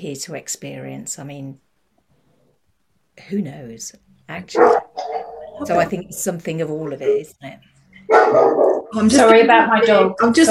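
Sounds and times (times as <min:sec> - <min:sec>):
speech: 0:00.0 - 0:01.7, 0:03.2 - 0:04.9, 0:05.6 - 0:10.4
dog barking and yowling: 0:04.6 - 0:05.8, 0:06.8 - 0:07.4, 0:08.1 - 0:09.0.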